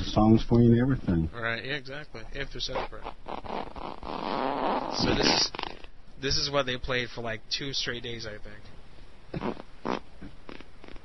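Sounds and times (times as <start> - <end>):
speech: 0.2 - 3.7, 4.3 - 5.6, 6.2 - 10.0
fart sounds: 2.6 - 5.9, 9.3 - 11.0.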